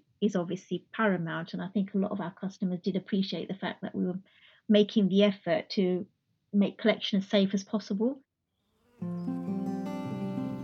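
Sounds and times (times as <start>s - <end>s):
speech: 0.2s - 8.2s
bees buzzing with a rich reedy tone: 8.8s - 10.6s.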